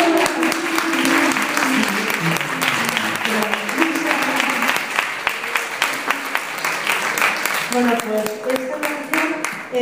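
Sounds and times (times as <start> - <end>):
audience applauding for a woman invited up to sing: 0.0 - 9.7.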